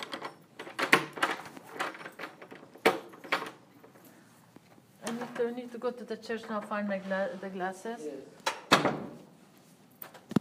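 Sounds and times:
door being pushed shut and locked: 0.0s - 3.9s, 8.4s - 9.2s
speech: 5.4s - 8.4s.

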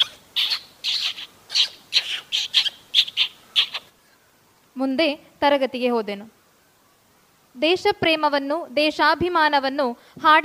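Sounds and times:
parrot in a nest calling in short high squawky chirps: 0.0s - 3.9s
speech: 4.8s - 6.4s, 7.6s - 10.4s.

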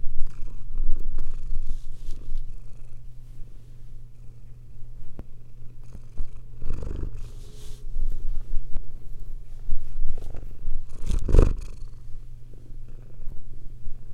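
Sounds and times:
cat purring: 0.0s - 3.2s, 4.1s - 14.1s
brief soft rustles and shifts: 1.1s - 4.0s, 5.9s - 11.4s
louder brushing movement: 1.6s - 2.5s, 7.2s - 11.2s.

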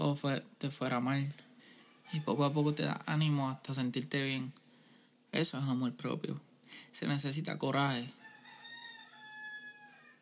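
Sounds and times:
speech: 0.1s - 1.4s, 2.1s - 4.6s, 5.3s - 8.2s
rooster crowing: 1.8s - 2.8s, 8.2s - 10.1s.

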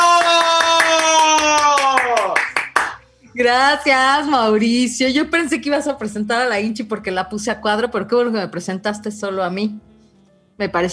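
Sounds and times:
rhythmic clapping: 0.0s - 3.1s
speech: 3.4s - 9.9s, 10.6s - 10.9s.

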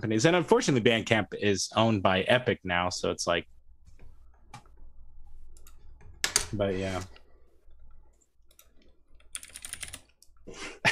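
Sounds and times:
speech: 0.0s - 3.5s, 6.5s - 7.2s
typing on a computer keyboard: 8.5s - 10.3s.

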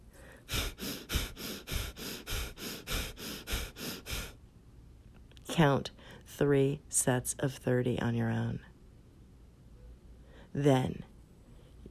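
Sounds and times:
rapid forceful breathing of a breath-of-fire exercise: 0.0s - 4.4s
speech: 5.6s - 8.7s, 10.6s - 11.1s.

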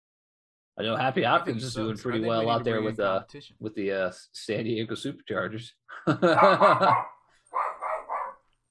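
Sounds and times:
speech: 0.8s - 7.7s
laughter: 5.9s - 7.1s
dog barking: 6.3s - 8.6s.

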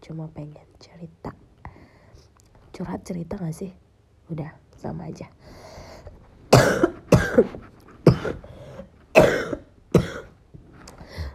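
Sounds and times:
speech: 0.1s - 1.5s, 2.8s - 5.6s, 7.4s - 8.4s
harsh coughing: 6.5s - 10.4s.

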